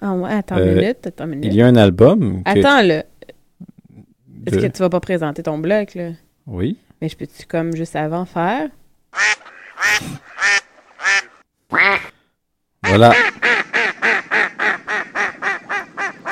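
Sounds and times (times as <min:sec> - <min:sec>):
speech: 0:00.0 - 0:03.1, 0:04.4 - 0:10.6, 0:12.8 - 0:13.4
duck quacking loudly and raspy: 0:09.2 - 0:12.2, 0:12.8 - 0:16.2.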